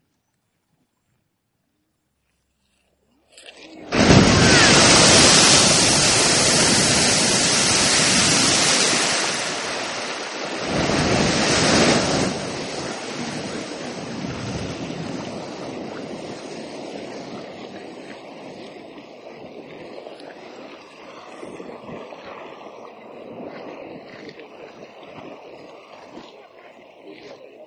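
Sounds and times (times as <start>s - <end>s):
wind: 0.0s - 27.6s
water gurgling and trickling as it drains back underground: 3.3s - 27.6s
geyser erupting in Iceland: 3.6s - 20.0s.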